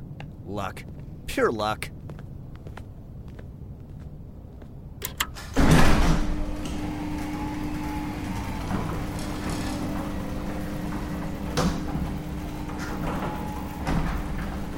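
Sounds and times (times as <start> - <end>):
speech: 0.5 - 2.2
large bay door rumbling and sliding open: 5.0 - 14.7
steady mechanical drone of bay door: 5.1 - 14.7.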